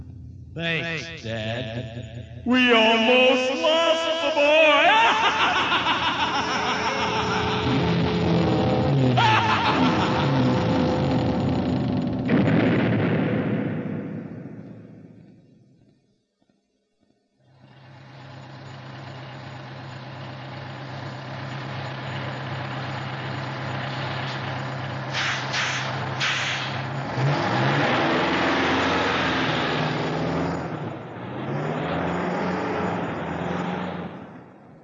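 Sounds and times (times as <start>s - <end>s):
bus engine droning during a bus ride: 0.0s - 16.1s, 17.1s - 34.8s
speech: 0.6s - 7.5s
laughter: 4.1s - 8.5s, 9.2s - 11.0s
short hissing bursts: 25.1s - 26.8s.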